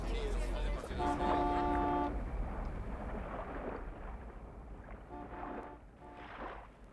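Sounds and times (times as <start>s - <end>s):
steady rumbling wind-like noise: 0.0s - 6.9s
car horn honking: 0.9s - 2.2s, 5.1s - 6.2s.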